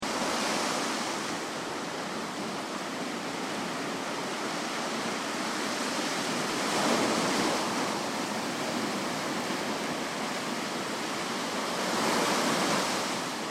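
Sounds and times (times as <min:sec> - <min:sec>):
sea flooding an ocean beach: 0:00.0 - 0:13.4.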